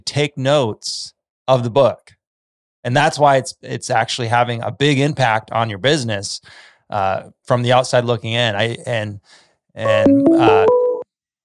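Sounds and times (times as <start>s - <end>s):
speech: 0.2s - 2.1s, 2.8s - 10.8s
loud steady electronic phone tone stepping through several pitches: 9.9s - 11.0s.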